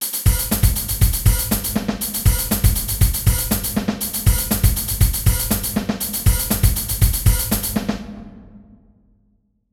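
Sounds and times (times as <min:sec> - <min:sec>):
rhythm at 100 to 120 bpm: 0:00.0 - 0:08.5.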